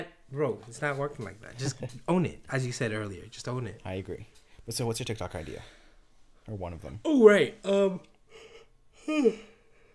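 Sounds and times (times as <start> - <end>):
speech: 0.0 - 5.8, 6.4 - 9.5
person yawning with a breathy groan: 8.3 - 9.7.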